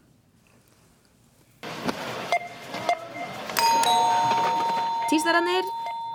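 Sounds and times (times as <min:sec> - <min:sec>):
mechanical shop cash register bell ringing: 0:03.1 - 0:06.1
mechanical shop cash register keys clattering: 0:03.6 - 0:06.1
speech: 0:05.1 - 0:05.8.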